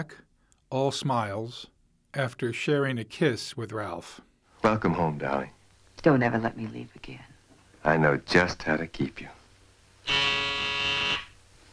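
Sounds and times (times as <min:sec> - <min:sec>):
speech: 0:00.0 - 0:09.4
electric doorbell buzzing: 0:10.0 - 0:11.4.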